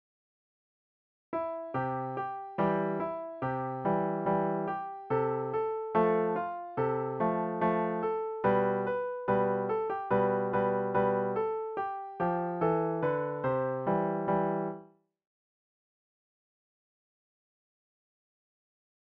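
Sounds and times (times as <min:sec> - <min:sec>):
piano solo: 0:01.4 - 0:14.9.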